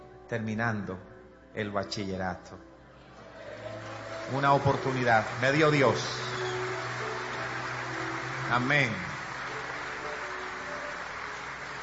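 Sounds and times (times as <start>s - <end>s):
speech: 0.3s - 2.7s, 4.3s - 6.2s, 8.5s - 9.1s
crowd applauding: 3.2s - 11.8s.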